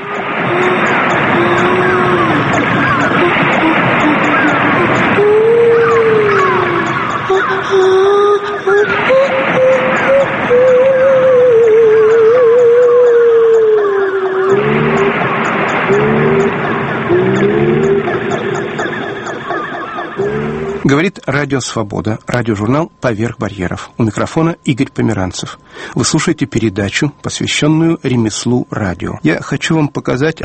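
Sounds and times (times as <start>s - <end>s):
whale and dolphin calls: 0.0s - 21.0s
speech: 21.0s - 30.4s.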